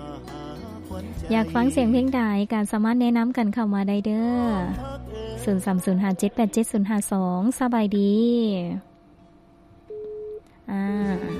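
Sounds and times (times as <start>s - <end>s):
speech: 1.0s - 8.9s, 10.7s - 11.3s
telephone line tone as a caller's line drops during a radio call-in: 9.9s - 10.4s.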